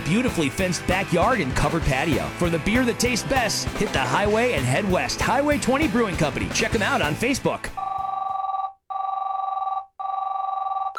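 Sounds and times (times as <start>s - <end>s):
speech: 0.1s - 7.9s
telephone ringing with electronic trill: 7.8s - 10.9s.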